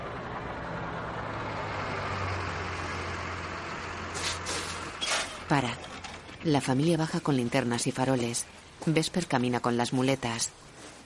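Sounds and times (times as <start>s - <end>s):
bus engine drone driving through a cemetery at night: 0.0s - 8.8s
bus road rumble: 0.0s - 11.0s
speech: 5.5s - 10.7s.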